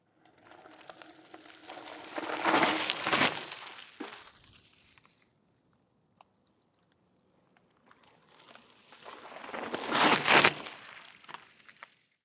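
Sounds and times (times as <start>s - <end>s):
mountain bike brake skid on wet dirt: 0.4s - 5.0s, 8.1s - 11.9s.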